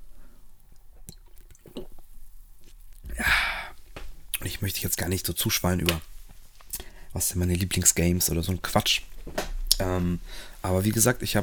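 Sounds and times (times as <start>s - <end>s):
person taking a quick sip of a drink: 0.7s - 2.1s
speech: 4.6s - 6.1s, 7.1s - 11.4s.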